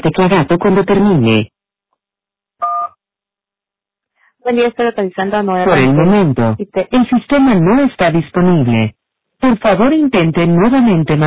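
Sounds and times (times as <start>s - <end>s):
speech: 0.0s - 1.6s, 4.4s - 11.2s
voicemail answering machine two-tone beep before recording: 2.6s - 3.0s.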